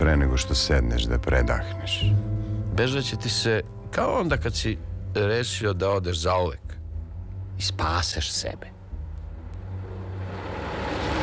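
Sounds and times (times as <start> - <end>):
speech: 0.1 - 6.7, 7.6 - 8.8
bus engine rumbling while crawling slowly through a sleeping town at dawn: 9.6 - 11.2.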